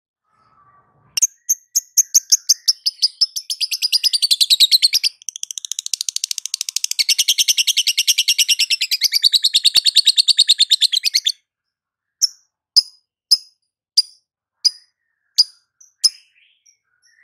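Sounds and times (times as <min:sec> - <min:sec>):
lovebird long fast rattling trill in ngekek panjang song style: 0:01.2 - 0:11.3
lovebird sharp high ticking chirps: 0:01.2 - 0:11.4, 0:12.2 - 0:17.2.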